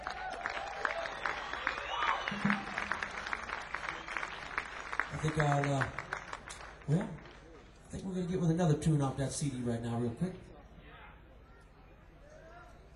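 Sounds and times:
crowd applauding: 0.0s - 7.8s
speech: 5.2s - 6.0s, 6.9s - 7.3s, 7.9s - 10.5s.

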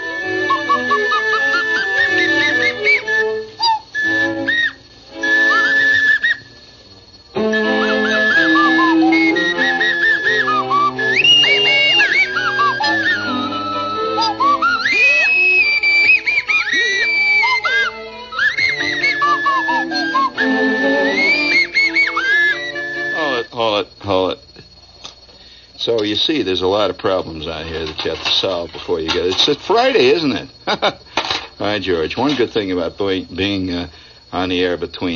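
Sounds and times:
nose flute playing a wobbly breathy melody: 0.0s - 6.6s, 7.4s - 23.5s
busy background of voices: 25.8s - 35.1s
speech: 26.3s - 31.0s, 31.8s - 35.1s.

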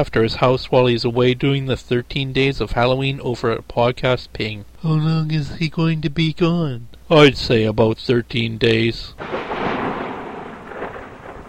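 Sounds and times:
speech: 0.0s - 9.4s
deep rumbling roll of thunder: 9.2s - 11.4s
steady wash of heavy rain: 9.2s - 11.4s.

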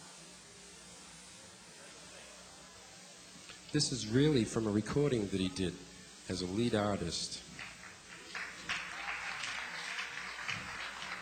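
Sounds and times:
speech: 3.7s - 7.6s
audience applause: 7.5s - 11.1s.

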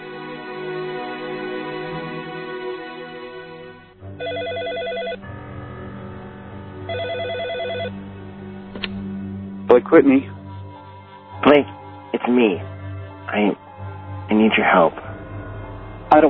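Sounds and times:
soft music: 0.0s - 16.2s
telephone ringing in trilling bursts: 4.2s - 5.2s, 6.9s - 8.0s
speech: 9.8s - 10.4s, 12.3s - 12.7s, 13.3s - 13.6s, 14.4s - 15.0s.

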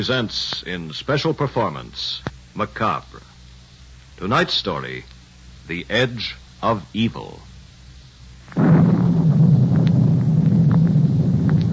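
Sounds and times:
speech: 0.0s - 3.3s, 4.2s - 7.5s, 8.5s - 8.8s
rumbling thunder: 8.5s - 11.7s
gusting storm wind: 8.6s - 11.7s.

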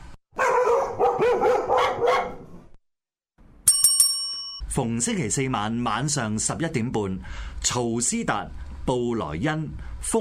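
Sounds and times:
dog barking: 0.4s - 2.6s
speech: 1.2s - 2.4s, 4.8s - 10.1s
bright bell ringing: 3.6s - 4.6s.

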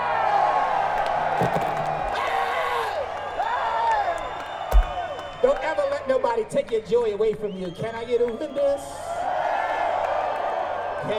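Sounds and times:
large live festival crowd cheering and screaming: 0.0s - 5.6s, 8.9s - 11.1s
speech: 1.4s - 1.7s, 6.4s - 9.0s.

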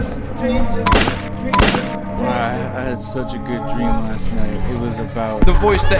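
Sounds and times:
steady music or noise: 0.0s - 5.9s
speech: 0.4s - 1.6s, 2.5s - 5.9s
gunshots: 0.9s - 2.0s.

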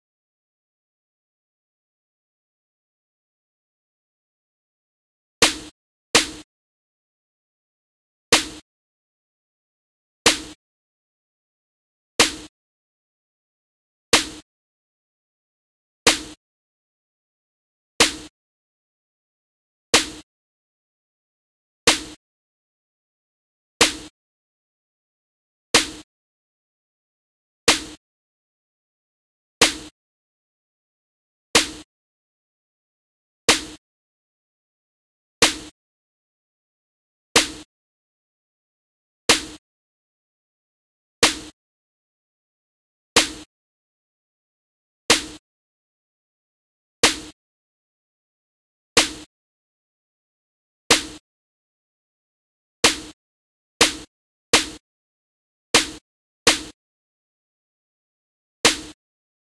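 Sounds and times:
snare noise: 5.4s - 6.5s, 8.3s - 8.6s, 10.3s - 10.6s, 12.2s - 12.5s, 14.2s - 14.4s, 16.1s - 16.4s, 18.0s - 18.3s, 20.0s - 20.2s, 21.9s - 22.2s, 23.8s - 24.1s, 25.8s - 26.1s, 27.7s - 28.0s, 29.6s - 29.9s, 31.6s - 31.9s, 33.5s - 33.8s, 35.4s - 35.7s, 37.4s - 37.7s, 39.3s - 39.6s, 41.2s - 41.6s, 43.2s - 43.5s, 45.1s - 45.4s, 50.9s - 51.2s, 52.8s - 53.2s, 53.8s - 54.8s, 55.8s - 56.8s, 58.7s - 59.0s.

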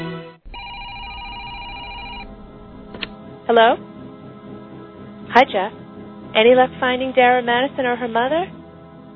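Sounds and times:
telephone ringing with a buzzy electronic tone in an apartment: 0.5s - 2.9s
speech: 3.5s - 3.9s, 5.3s - 5.8s, 6.3s - 8.6s.

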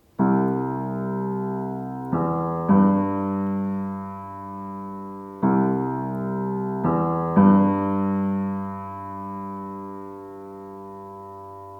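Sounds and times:
piano riff: 0.2s - 11.7s.

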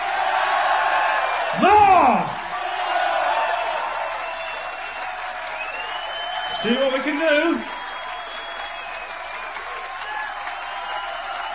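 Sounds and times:
large audience cheering and whooping: 0.0s - 11.5s
person shouting: 1.5s - 2.4s
speech: 6.6s - 7.7s.

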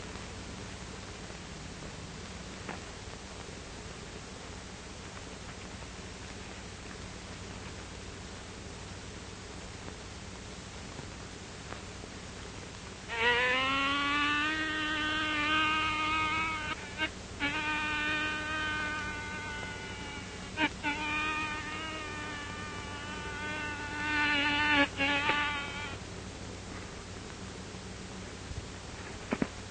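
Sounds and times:
voice imitating a buzzing bee: 13.1s - 26.0s.

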